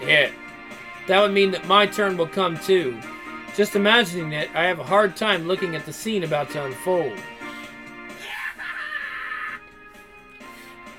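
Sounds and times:
speech: 1.1 - 7.3
shrill blood-curdling scream from the batter box: 8.2 - 9.6.

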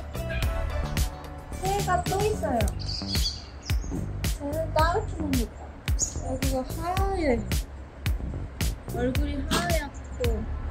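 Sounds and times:
birds chirping: 0.2 - 10.6
rising and falling warbled bird calls: 2.7 - 4.2.

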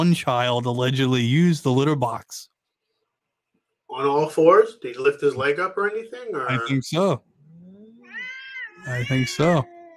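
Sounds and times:
speech: 0.0 - 2.5, 3.9 - 7.3, 8.8 - 9.7
cats yowling and caterwauling: 7.3 - 9.9.

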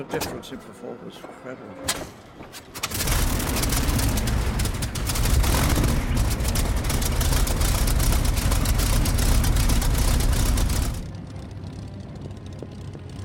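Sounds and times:
speech: 0.0 - 4.0
supercharged Rolls-Royce piston engine of a Spitfire 9 fighter running: 2.8 - 12.9.

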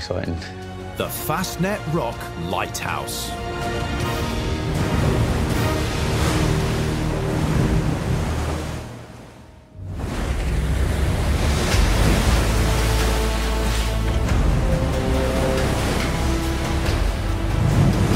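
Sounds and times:
speech: 0.1 - 4.1
Atlantic Ocean waves and surf: 1.0 - 18.1.

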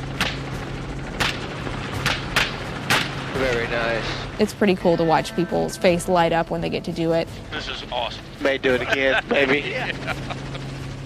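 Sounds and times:
helicopter rotor hum: 0.0 - 11.0
gunshots fired from a helicopter during a pig hunt: 1.2 - 3.3
speech: 3.4 - 10.5
laughter: 8.4 - 10.8.

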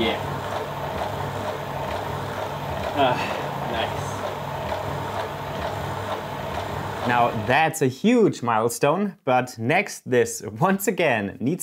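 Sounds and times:
motor running in a hand-built crank mechanism without gas shocks: 0.0 - 7.5
speech: 3.0 - 3.4, 7.1 - 11.6.

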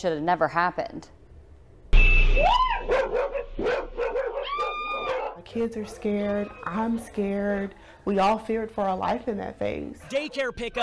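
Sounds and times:
speech: 0.0 - 1.2, 5.5 - 10.8
pack of dogs barking and yipping: 2.6 - 8.0.

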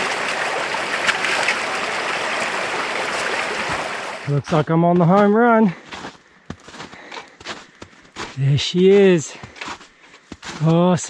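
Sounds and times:
creek water rushing: 0.0 - 4.5
speech: 4.3 - 5.8, 8.4 - 9.5, 10.6 - 11.0.

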